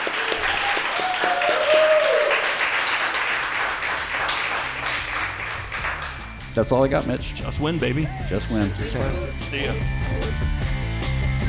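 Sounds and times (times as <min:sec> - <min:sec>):
crowd applauding: 0:00.0 - 0:06.8
speech: 0:06.6 - 0:10.6.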